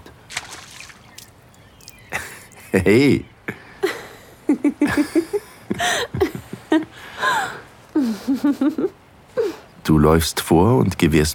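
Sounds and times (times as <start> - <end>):
shallow surf splashing and foam fizzing around ankles: 0.0 - 2.7
laughter: 2.1 - 3.2, 3.8 - 8.9
speech: 2.7 - 3.6, 8.0 - 9.0, 9.9 - 11.3.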